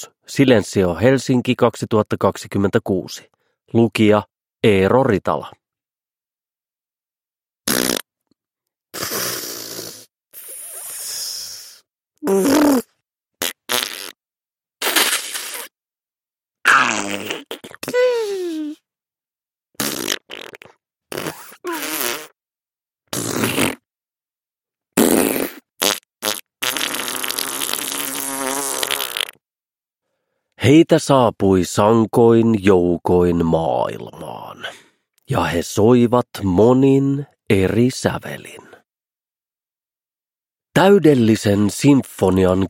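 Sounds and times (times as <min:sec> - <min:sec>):
speech: 0:00.0 - 0:05.6, 0:12.2 - 0:12.9, 0:30.6 - 0:38.7, 0:40.8 - 0:42.6
farting sounds: 0:07.6 - 0:08.1, 0:08.9 - 0:11.2, 0:12.2 - 0:14.2, 0:14.8 - 0:15.8, 0:16.7 - 0:18.2, 0:19.8 - 0:22.4, 0:23.1 - 0:23.9, 0:25.0 - 0:29.4.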